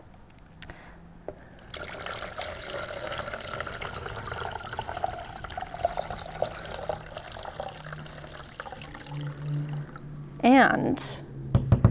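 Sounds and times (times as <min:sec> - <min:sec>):
water pouring into big empty stone jars: 0:01.4 - 0:10.1
speech: 0:10.5 - 0:11.2.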